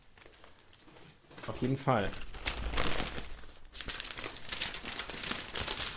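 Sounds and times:
printed paper newspaper pages rustling and crinkling: 0.0 - 5.9
speech: 1.5 - 2.3.

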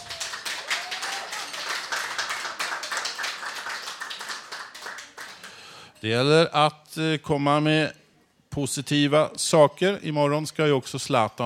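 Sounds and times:
applause from a small group: 0.0 - 5.7
speech: 6.0 - 11.4.

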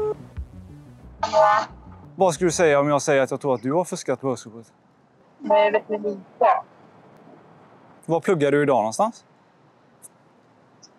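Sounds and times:
electronic telephone tone: 0.0 - 0.2
speech: 1.2 - 6.6, 8.1 - 9.3
faint hum: 1.2 - 10.9.

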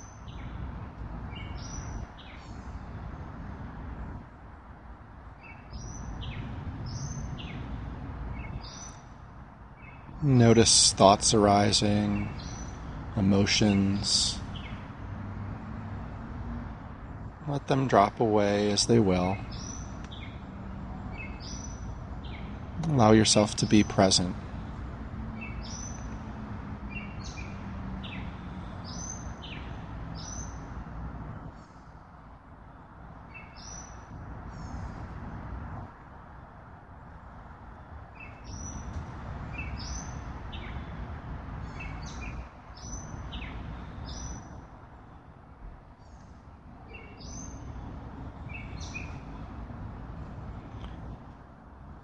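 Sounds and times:
birds singing and chirping outdoors: 0.0 - 3.1, 5.4 - 15.2, 17.4 - 30.9, 33.2 - 35.0, 38.1 - 44.6, 46.0 - 49.8
speech: 10.2 - 12.5, 13.2 - 14.4, 17.5 - 19.6, 22.9 - 24.4.

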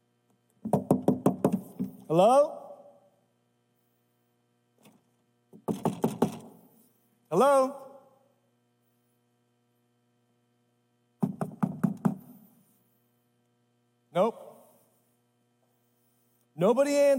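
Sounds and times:
steady low electrical hum: 0.0 - 17.1
knocking on a door: 0.6 - 2.0, 5.6 - 6.5, 11.2 - 12.3
speech: 2.1 - 2.6, 7.3 - 7.8, 16.6 - 17.1.

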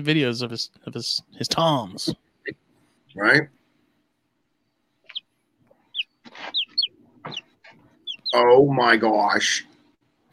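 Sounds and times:
speech: 0.0 - 2.6, 3.2 - 3.6, 8.3 - 9.7
chickens clucking and chirping: 5.0 - 8.7.

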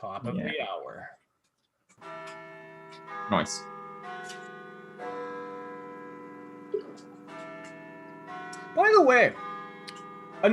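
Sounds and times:
speech: 0.0 - 1.2, 2.0 - 3.7, 8.8 - 9.5
large tower bells chiming the hour: 2.0 - 10.5.

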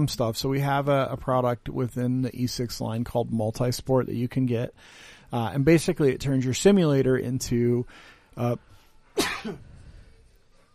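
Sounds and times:
speech: 0.0 - 9.7
sneeze: 9.2 - 9.7.

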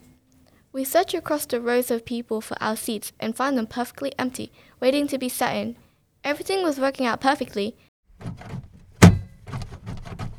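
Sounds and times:
speech: 0.7 - 8.5
airplane door shutting: 8.2 - 10.3.

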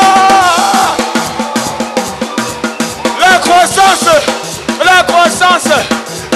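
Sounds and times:
crowd shouting and cheering with joy: 0.0 - 6.3
steady rhythmic pulse of beats or claps: 0.0 - 6.3.

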